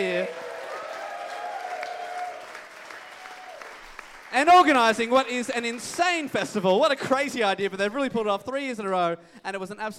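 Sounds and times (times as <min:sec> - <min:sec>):
festival audience applause: 0:00.0 - 0:06.4
speech: 0:04.3 - 0:09.9.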